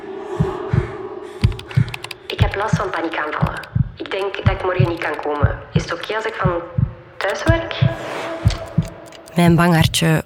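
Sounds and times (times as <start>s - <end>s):
keyboard clicks: 1.4s - 6.4s, 7.2s - 7.7s, 8.5s - 10.2s
speech: 2.6s - 8.2s, 9.4s - 10.2s.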